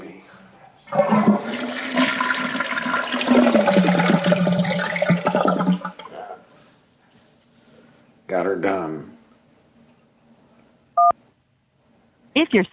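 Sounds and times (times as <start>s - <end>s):
toilet flushing: 0.9s - 6.2s
speech: 12.5s - 12.7s.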